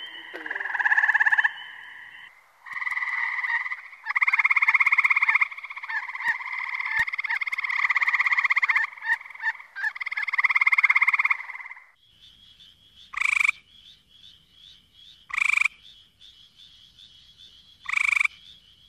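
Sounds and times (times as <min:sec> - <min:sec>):
thin steady high tone: 0:00.0 - 0:02.3
Gray treefrog Hyla versicolor giving pulsed trills: 0:00.0 - 0:12.0, 0:12.6 - 0:18.8.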